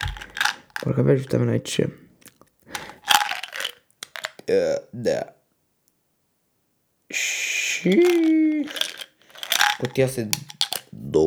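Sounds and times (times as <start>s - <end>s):
crunching and chewing of sugar-free peach-flavoured mint candies: 0.0s - 1.0s, 2.2s - 4.5s, 7.9s - 11.0s
speech: 0.8s - 2.0s, 4.5s - 5.4s, 7.1s - 8.9s, 9.8s - 11.2s.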